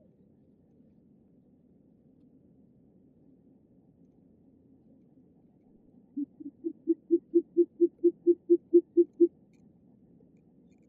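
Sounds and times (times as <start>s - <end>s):
Short-eared owl giving deep soft hoots: 6.2s - 9.3s.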